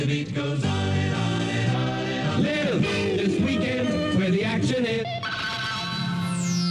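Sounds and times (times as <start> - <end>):
speech: 0.0 - 0.8
radio station jingle with sung voices over bright music: 1.4 - 6.6.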